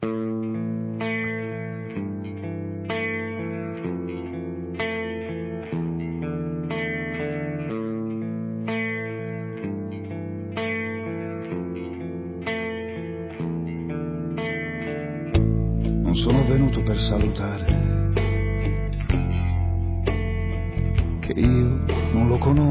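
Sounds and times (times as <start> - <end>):
instrumental intro of an Italian song with rich chords: 0.0 - 22.6.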